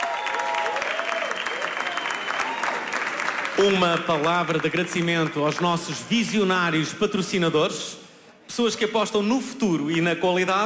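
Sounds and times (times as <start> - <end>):
faint cheering: 0.0 - 3.7
audience applause: 0.0 - 6.0
speech: 3.6 - 10.6.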